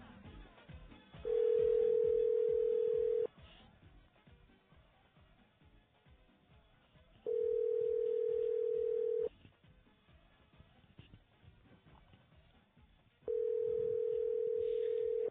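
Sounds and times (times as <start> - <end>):
ringback tone of an outgoing telephone call placed to a home: 1.3 - 3.3, 7.3 - 9.3, 13.3 - 15.3.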